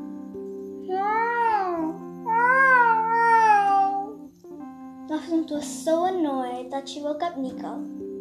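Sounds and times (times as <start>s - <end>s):
human voice imitating cat meows: 0.9s - 4.2s
speech: 5.5s - 7.9s.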